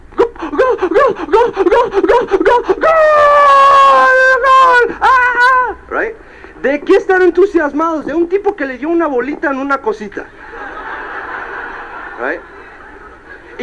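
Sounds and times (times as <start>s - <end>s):
voice mimicking a football crowd celebrating a goal: 0.2s - 5.9s
laughter: 0.4s - 3.4s, 10.3s - 13.6s
speech: 0.8s - 10.4s, 12.2s - 12.5s.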